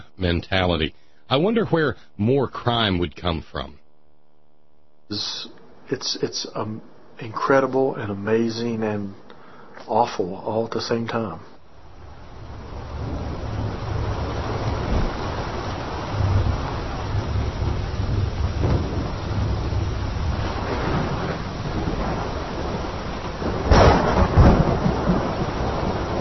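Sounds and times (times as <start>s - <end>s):
steady rain hissing: 0.0s - 3.8s, 5.0s - 26.1s
speech: 0.2s - 3.8s, 5.1s - 9.2s, 9.8s - 11.5s
low rumbling thunder: 11.9s - 26.1s.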